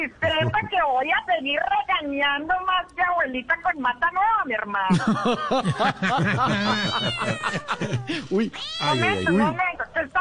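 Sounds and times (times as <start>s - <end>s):
speech: 0.0s - 10.1s
laughter: 0.2s - 0.7s, 4.9s - 8.5s
several cats meowing: 6.4s - 9.6s.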